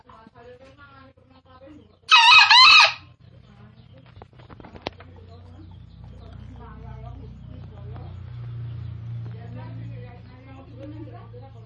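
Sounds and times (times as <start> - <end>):
Green junglefowl crowing: 2.1 - 3.1
low rumbling: 3.1 - 11.6.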